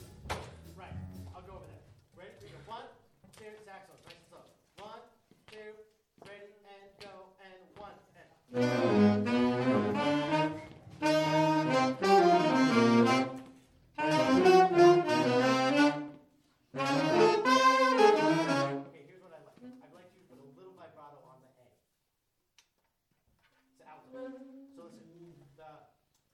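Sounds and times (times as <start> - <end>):
saxophones playing at G: 8.5 - 19.0.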